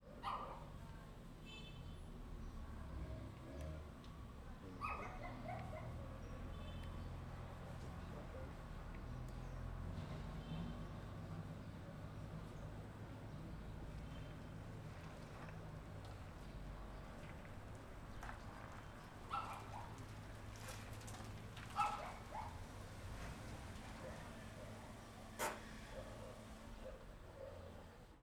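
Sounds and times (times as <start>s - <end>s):
residential street ambience in Paranoa: 0.0s - 28.2s
car parking on a residential street: 14.1s - 27.6s.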